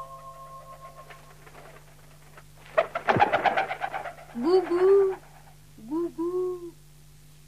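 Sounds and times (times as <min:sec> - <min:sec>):
rustling noise: 0:00.2 - 0:05.6
dove cooing: 0:00.2 - 0:06.7.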